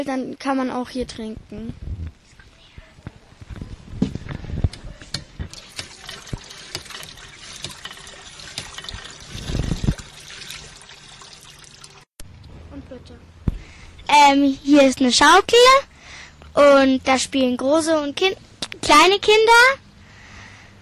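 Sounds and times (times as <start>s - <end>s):
speech: 0.0s - 1.9s, 14.3s - 15.9s, 16.6s - 19.8s
small knocks and thumps: 1.6s - 10.2s
water trickling and splashing from a water mill at a children's water playground: 5.4s - 12.2s.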